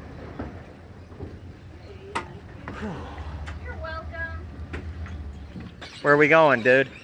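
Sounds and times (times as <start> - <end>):
faint rail clatter: 0.0 - 7.0
wildlife park tram idling at a tram stop: 0.0 - 7.0
voices murmuring: 1.6 - 7.0
speech: 2.8 - 3.2, 6.0 - 7.0.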